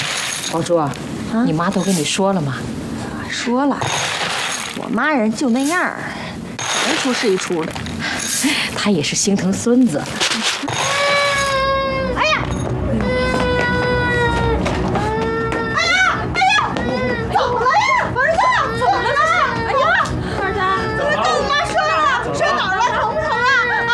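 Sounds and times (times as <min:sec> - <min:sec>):
speech: 0:00.5 - 0:04.2, 0:04.8 - 0:06.2, 0:07.0 - 0:10.6
child wailing: 0:10.8 - 0:23.9.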